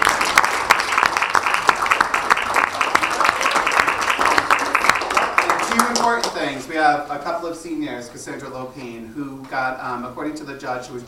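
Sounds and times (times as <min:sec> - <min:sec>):
crowd applauding: 0:00.0 - 0:06.6
speech: 0:06.5 - 0:11.0.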